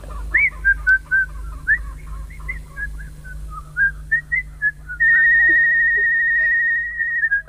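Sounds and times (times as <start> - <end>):
faint low hum: 0.0 - 7.4
person whistling a short wavering tune: 3.8 - 7.4.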